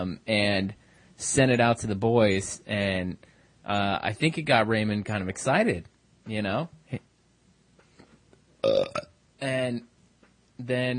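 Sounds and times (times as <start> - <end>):
speech: 0.0 - 7.1, 8.6 - 9.9, 10.6 - 10.9
loud low throaty burp after drinking wine: 8.6 - 9.2.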